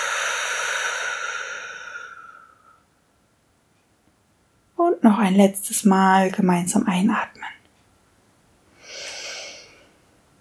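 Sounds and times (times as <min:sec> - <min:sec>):
slow exhalation during a guided breathing exercise: 0:00.0 - 0:02.9, 0:08.8 - 0:10.0
speech: 0:05.0 - 0:07.6.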